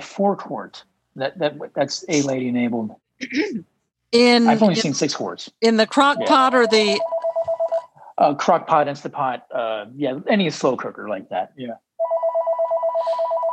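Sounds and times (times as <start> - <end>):
speech: 0.2 - 7.2, 8.2 - 11.8
phone ringing with electronic ringtone: 6.2 - 8.0, 12.0 - 13.5.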